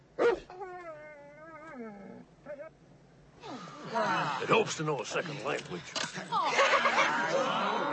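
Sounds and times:
dog yip: 0:00.2 - 0:00.5
speech: 0:01.8 - 0:06.6
laughter: 0:03.8 - 0:07.8.

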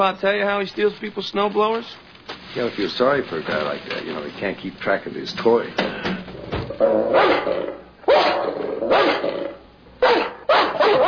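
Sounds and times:
speech: 0:00.0 - 0:07.8
Doberman barking and growling: 0:06.7 - 0:11.0.

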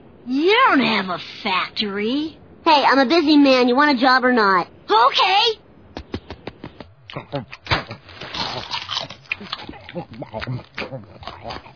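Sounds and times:
speech: 0:00.2 - 0:05.6, 0:07.1 - 0:07.7, 0:09.4 - 0:11.7
grunting snuffling vocal noises: 0:07.1 - 0:11.7
person eating noisily with sloppy crunching and chewing: 0:07.1 - 0:11.7.

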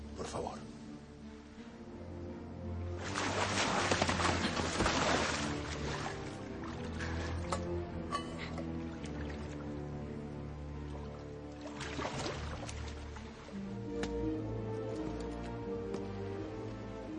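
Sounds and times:
music: 0:00.0 - 0:17.1
water from a fountain poured into chalices: 0:03.0 - 0:09.8, 0:10.9 - 0:13.5.

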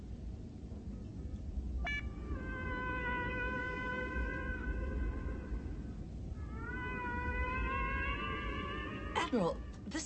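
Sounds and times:
steady rumbling noise: 0:00.0 - 0:10.0
whale song played over speakers: 0:01.8 - 0:09.8
speech: 0:09.3 - 0:10.0.

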